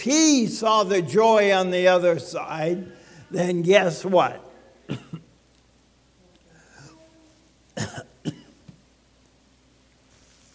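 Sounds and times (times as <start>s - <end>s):
speech: 0.0s - 5.1s
adult man coughing softly with short dry coughs: 4.9s - 5.3s, 7.8s - 8.6s.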